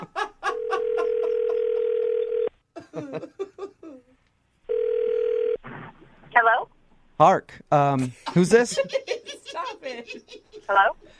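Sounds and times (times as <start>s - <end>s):
laughter: 0.0s - 1.8s, 2.8s - 4.1s, 8.0s - 10.9s
telephone dial tone while dialing a number: 0.6s - 2.6s, 4.7s - 5.6s
speech: 7.2s - 9.1s, 10.1s - 11.0s.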